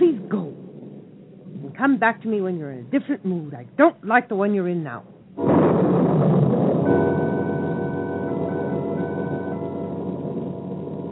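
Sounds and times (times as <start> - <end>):
loud deep rolling thunder: 0.0 - 3.0, 5.0 - 11.1
steady noisy storm wash: 0.0 - 11.1
speech: 1.8 - 7.2
thin ringing tone: 6.9 - 10.2.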